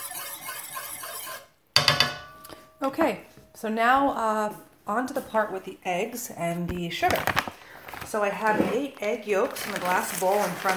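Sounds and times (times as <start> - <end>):
whisk swishing in cooled coconut cream: 0.0 - 1.5
speech: 2.8 - 7.5, 8.1 - 10.7.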